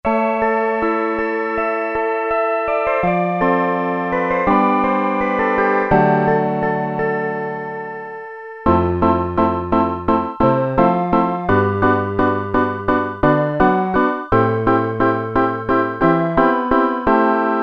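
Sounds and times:
electric piano tones: 0.1s - 17.6s.

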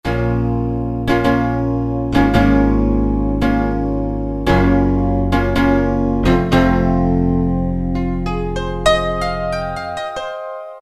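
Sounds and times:
upright piano: 0.0s - 10.7s.

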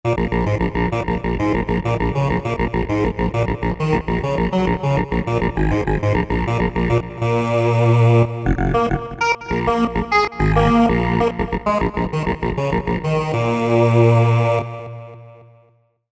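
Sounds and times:
robotic vocal synth: 0.1s - 15.2s.

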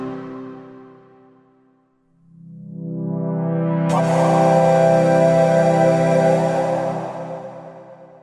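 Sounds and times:
Korg M1 synthesizer sound: 2.3s - 8.2s.

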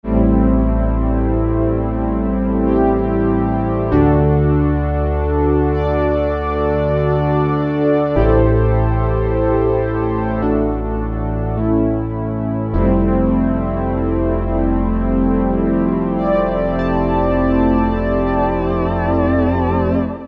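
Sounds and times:
Korg DSS-1 DWGS synthesizer strings preset: 0.1s - 20.2s.

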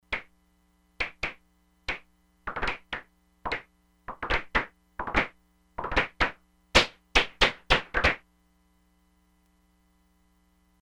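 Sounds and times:
synthesizer noise claps: 0.0s - 0.3s, 1.0s - 8.2s.

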